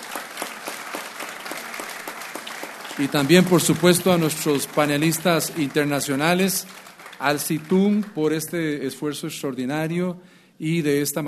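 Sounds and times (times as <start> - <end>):
audience applauding at the close of a forum: 0.0 - 8.7
speech: 3.0 - 11.2.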